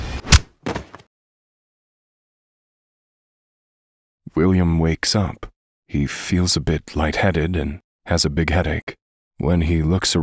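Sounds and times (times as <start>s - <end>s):
softer rougher scuffling thud: 0.0s - 1.1s
gun striking the top of a man's head: 0.2s - 1.0s
speech: 4.3s - 10.2s.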